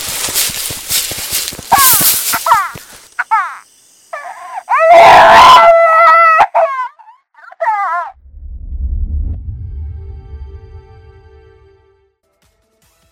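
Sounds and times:
eerie baby-like crying and wailing sobs: 0:02.5 - 0:08.2
low murky rumble: 0:08.2 - 0:11.3.

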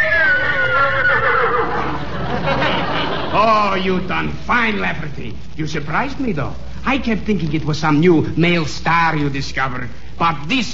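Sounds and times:
horse whinnying on command: 0:00.0 - 0:02.0
laughter: 0:00.5 - 0:04.0
speech: 0:03.4 - 0:10.7.

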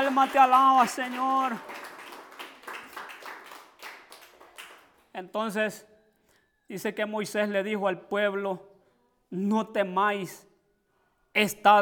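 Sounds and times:
crowd applauding: 0:00.0 - 0:05.1
speech: 0:00.2 - 0:01.9, 0:05.2 - 0:05.9, 0:06.7 - 0:08.7, 0:09.3 - 0:10.5, 0:11.4 - 0:11.7.

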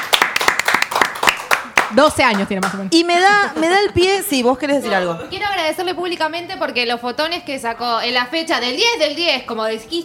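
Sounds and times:
small group clapping hands in a studio: 0:00.0 - 0:02.8
speech: 0:01.9 - 0:10.0.

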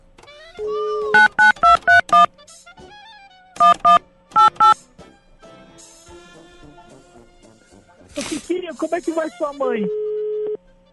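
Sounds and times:
steady telephone dial tone: 0:00.9 - 0:02.3, 0:03.6 - 0:04.8, 0:09.9 - 0:10.6
telephone electronic keypad beeps dialing a call: 0:01.1 - 0:02.3, 0:03.6 - 0:04.8
speech: 0:09.0 - 0:10.1.

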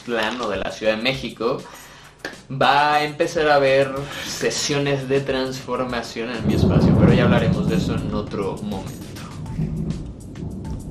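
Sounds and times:
speech: 0:00.0 - 0:09.0
faint rain-like hiss: 0:00.0 - 0:10.5
rolling thunder from a storm: 0:06.4 - 0:10.8.

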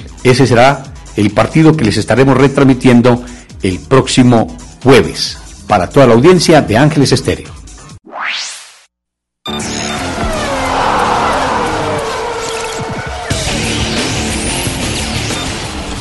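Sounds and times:
speech: 0:00.2 - 0:07.6
Formula 1 race car engines roaring: 0:09.5 - 0:16.0
race car engine screaming past: 0:09.7 - 0:14.8.

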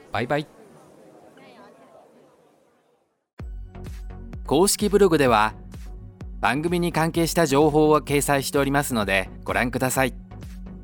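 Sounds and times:
busy outdoor night market crowd murmuring: 0:00.0 - 0:03.2
speech: 0:00.1 - 0:00.6, 0:04.5 - 0:05.6, 0:06.4 - 0:10.2.

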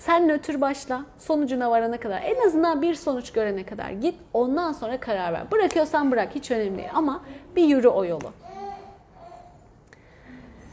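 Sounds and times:
faint hum: 0:00.0 - 0:10.7
speech: 0:00.1 - 0:08.5
baby babbling softly: 0:08.4 - 0:09.6.

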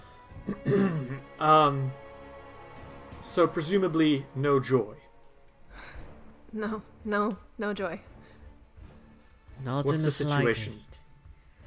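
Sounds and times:
person clearing throat for a character in a tabletop role-playing game: 0:00.5 - 0:01.3
speech: 0:00.7 - 0:02.0, 0:03.2 - 0:05.0, 0:05.8 - 0:08.1, 0:09.6 - 0:11.0.

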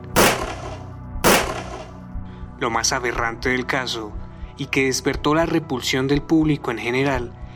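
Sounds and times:
gunshots: 0:00.0 - 0:02.0
speech: 0:02.6 - 0:07.4.

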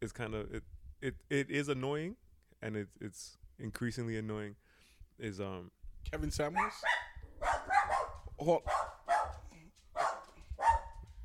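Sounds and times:
speech: 0:00.0 - 0:04.6, 0:05.2 - 0:07.0, 0:08.4 - 0:08.8
dogs barking: 0:06.5 - 0:11.1.

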